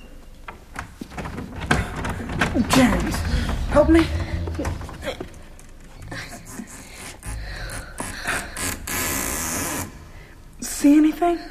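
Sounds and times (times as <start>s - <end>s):
cellar door creaking and scraping open: 0.4s - 9.5s
speech: 2.6s - 4.8s, 10.8s - 11.4s.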